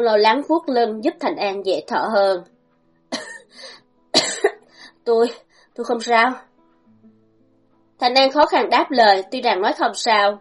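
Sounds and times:
speech: 0:00.0 - 0:02.5, 0:05.0 - 0:06.5, 0:08.0 - 0:10.3
woman coughing harshly and choking while sitting on the ground: 0:03.1 - 0:04.7.

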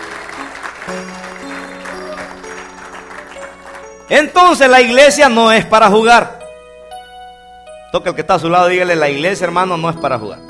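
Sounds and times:
congregation applauding at an evangelical church service: 0:00.0 - 0:04.7
sustained musical tones: 0:00.0 - 0:10.4
speech: 0:04.1 - 0:06.4, 0:07.9 - 0:10.4.

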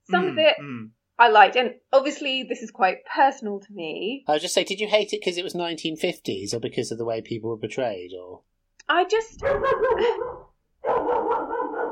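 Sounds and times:
speech: 0:00.1 - 0:11.2
pet dog barking: 0:09.4 - 0:11.9.

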